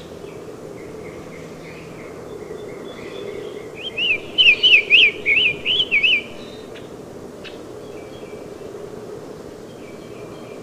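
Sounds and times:
Summer Tanager singing whistled phrases: 3.8 - 6.3.

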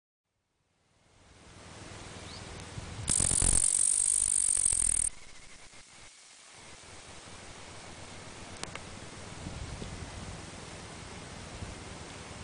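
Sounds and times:
quiet background hiss: 0.6 - 12.4
upland green bush-cricket song, Tettigonia cantans: 3.1 - 9.4
faint tick: 8.5 - 8.9.

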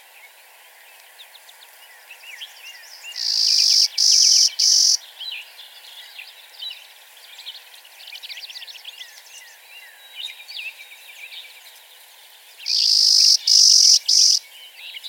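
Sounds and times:
Clay-colored sparrow Spizella pallida singing dry buzzes: 0.0 - 15.0
faint twittering: 3.1 - 5.0, 12.7 - 14.4.

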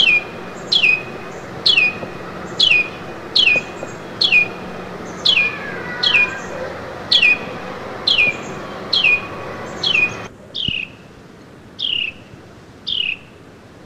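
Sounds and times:
Carolina wren giving clipped falling call notes: 0.0 - 11.0.

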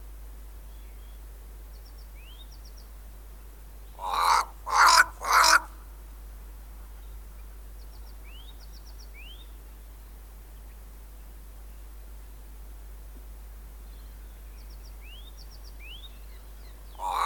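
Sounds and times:
Cape crow Corvus capensis harsh cawing: 4.0 - 5.8, 17.0 - 17.2.

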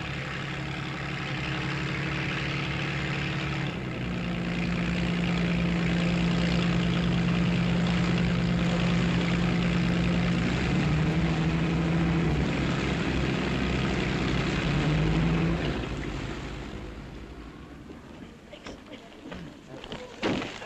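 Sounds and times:
propeller engine of a mail plane droning: 0.0 - 19.0.

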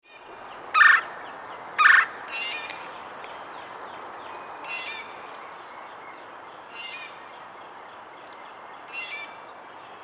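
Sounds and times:
Red-bellied woodpecker Melanerpes carolinus harsh rolling calls: 0.7 - 2.7.

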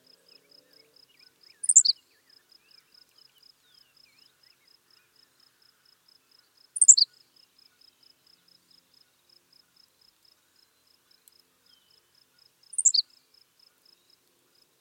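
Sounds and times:
faint insect trill: 0.0 - 14.7
Henslow's sparrow Ammodramus henslowii hiccup call: 1.6 - 2.0, 6.8 - 7.1, 12.7 - 13.0.

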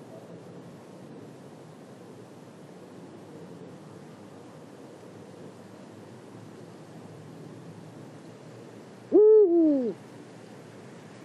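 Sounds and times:
quiet hiss: 0.0 - 11.2
Eurasian eagle-owl hoot: 9.1 - 10.0.

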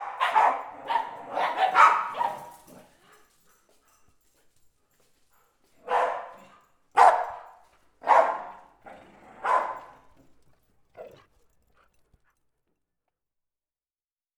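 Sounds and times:
dog giving a faint short yip: 0.0 - 2.6, 7.0 - 7.5, 8.1 - 8.6
two dogs barking: 0.0 - 2.9, 5.8 - 10.1.

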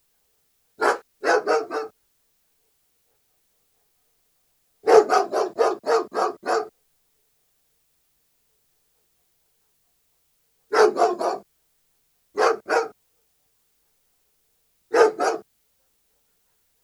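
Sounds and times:
German Shepherd barking: 0.8 - 2.0, 4.8 - 6.8, 10.7 - 11.5, 12.4 - 13.0, 14.9 - 15.5.

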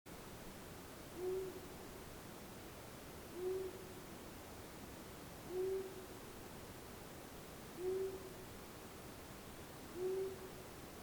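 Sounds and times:
long-eared owl Asio otus calling with deep muted hoots: 1.2 - 1.6, 3.3 - 3.9, 5.5 - 6.0, 7.8 - 8.3, 9.9 - 10.5.

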